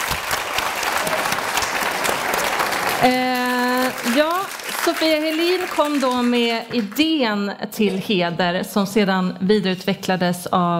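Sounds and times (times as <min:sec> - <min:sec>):
audience applause: 0:00.0 - 0:07.2
speech: 0:03.0 - 0:03.4, 0:04.0 - 0:10.7.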